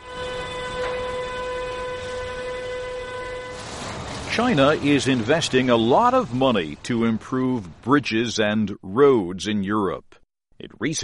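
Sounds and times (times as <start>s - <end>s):
train horn: 0.0s - 5.2s
train moving along the tracks: 0.0s - 7.9s
speech: 4.4s - 11.0s.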